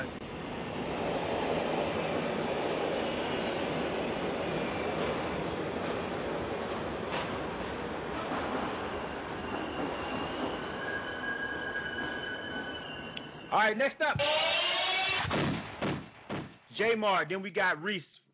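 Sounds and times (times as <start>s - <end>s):
subway train rumbling along the tracks: 0.0s - 14.9s
speech: 13.5s - 14.5s, 16.8s - 18.2s.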